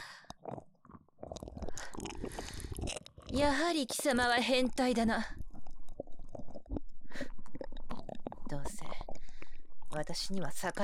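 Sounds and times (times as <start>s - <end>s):
person chewing and biting while tasting food: 0.2s - 3.5s, 5.4s - 8.5s
speech: 3.3s - 5.4s, 10.0s - 10.8s.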